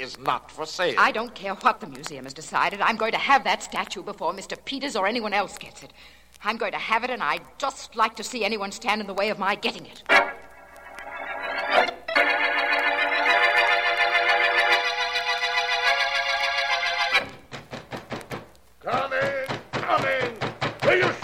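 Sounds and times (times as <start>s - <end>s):
speech: 0.0s - 10.4s, 11.7s - 12.4s
sustained musical chords: 10.2s - 17.3s
loud sharp knocks on a door at night: 17.4s - 18.5s, 19.2s - 21.2s.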